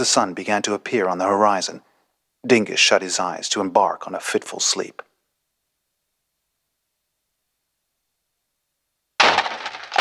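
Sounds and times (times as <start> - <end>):
speech: 0.0 - 5.1
clattering crunching rattle of breaking pottery: 9.2 - 9.9
door banging hard into a potted succulent: 9.2 - 9.9.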